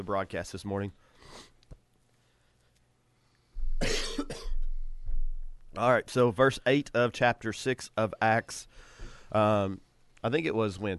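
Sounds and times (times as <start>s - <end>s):
speech: 0.0s - 1.7s, 5.8s - 10.9s
person coughing harshly: 3.8s - 4.7s.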